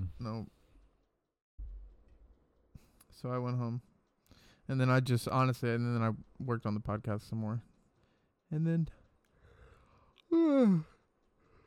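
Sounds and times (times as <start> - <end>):
speech: 0.2 - 0.6, 3.2 - 3.9, 4.7 - 7.7, 8.5 - 9.0, 10.3 - 10.9
faint breath: 4.2 - 4.7, 9.3 - 10.2, 11.4 - 11.6
person yawning: 10.3 - 11.0.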